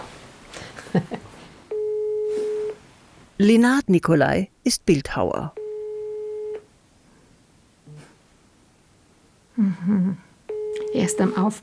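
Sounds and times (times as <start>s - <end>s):
telephone line ringing tone on an outgoing call: 1.7s - 2.8s, 5.6s - 6.6s, 10.5s - 11.6s
speech: 3.4s - 5.6s, 11.0s - 11.6s.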